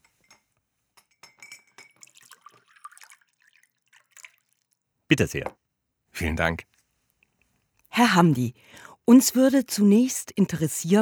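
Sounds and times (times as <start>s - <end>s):
glass clinking: 0.0s - 4.4s
glass of water being poured and served: 1.2s - 4.9s
speech: 5.1s - 5.6s, 6.2s - 6.7s, 8.0s - 11.0s.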